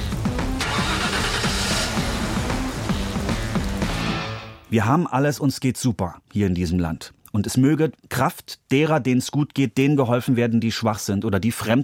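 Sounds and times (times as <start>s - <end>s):
car engine starting and running in Germany: 0.0s - 4.6s
speech: 4.7s - 11.8s.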